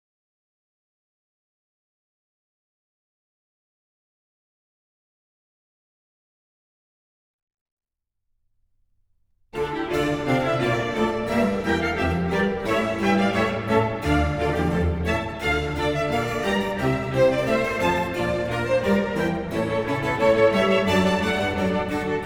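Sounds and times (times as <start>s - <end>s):
oboe concerto music in D minor: 9.6s - 22.2s.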